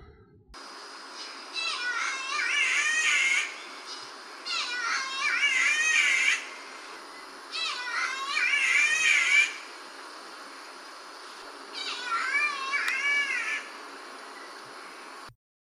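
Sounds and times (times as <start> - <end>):
faint noise: 0.0 - 15.3
catbird of the bowerbird family giving harsh nasal mewling calls: 0.6 - 9.8, 11.7 - 13.8.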